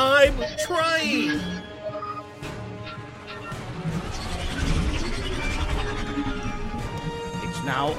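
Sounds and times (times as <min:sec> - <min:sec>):
speech: 0:00.2 - 0:02.5, 0:07.6 - 0:07.9
spaceship engines running: 0:02.7 - 0:07.9.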